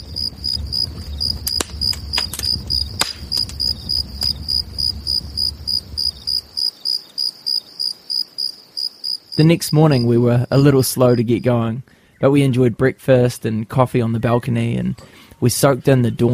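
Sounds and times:
low rumble: 0:00.0 - 0:06.6
crickets chirping in the bush at night: 0:00.0 - 0:11.6
sharp clicks: 0:01.4 - 0:04.4
speech: 0:09.4 - 0:16.3.

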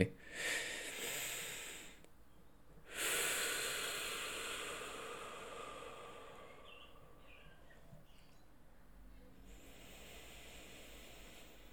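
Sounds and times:
slow deliberate breathing to calm down: 0:00.2 - 0:02.2, 0:02.8 - 0:07.4, 0:09.4 - 0:11.7.

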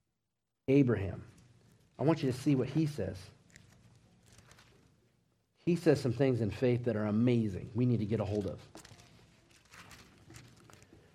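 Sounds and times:
speech: 0:00.7 - 0:01.3, 0:02.0 - 0:03.4, 0:05.6 - 0:08.9
Bible pages being turned: 0:03.4 - 0:05.1, 0:08.2 - 0:11.1.

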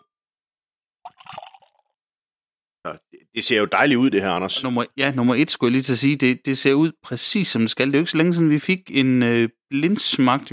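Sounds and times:
beer poured from a can into a glass: 0:01.0 - 0:01.9
speech: 0:02.8 - 0:10.5.

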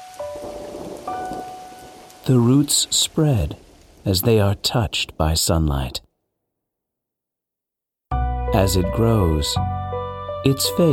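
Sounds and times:
rain falling: 0:00.0 - 0:06.0
speech: 0:02.3 - 0:06.1, 0:08.5 - 0:09.8, 0:10.4 - 0:10.9.

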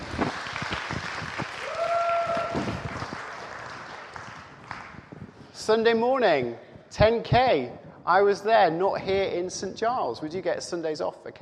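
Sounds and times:
audience applause: 0:00.0 - 0:05.1
whoop or whistle: 0:01.6 - 0:02.8
speech: 0:05.7 - 0:11.4.

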